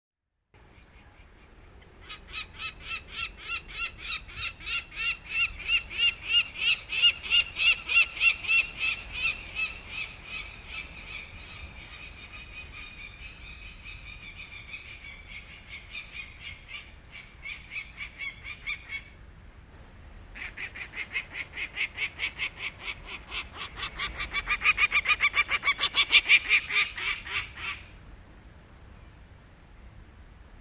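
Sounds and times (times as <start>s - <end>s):
Peregrine falcon: 0.6s - 19.2s, 20.3s - 28.0s.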